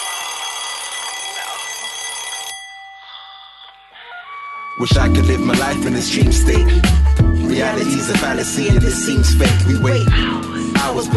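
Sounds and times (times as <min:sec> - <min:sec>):
alarm clock bell ringing: 0:00.0 - 0:04.3
speech: 0:04.8 - 0:11.1.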